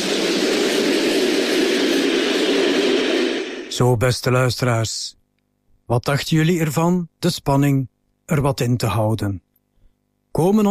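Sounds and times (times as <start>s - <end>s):
train braking into a station: 0.0s - 3.8s
speech: 3.8s - 5.2s, 5.9s - 9.4s, 10.3s - 10.6s.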